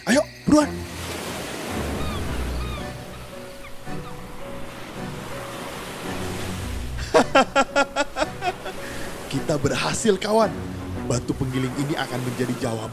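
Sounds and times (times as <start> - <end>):
speech: 0.0 - 1.0, 9.6 - 12.9
sea waves washing against a harbor dock: 0.5 - 12.9
faint bird calls: 1.8 - 5.0
laughter: 7.0 - 8.8.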